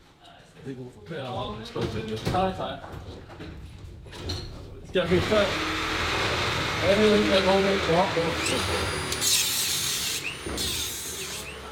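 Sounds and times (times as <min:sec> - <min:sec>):
speech: 0:00.6 - 0:09.4
power tools cutting through wooden scaffolding of a train track: 0:05.0 - 0:11.7.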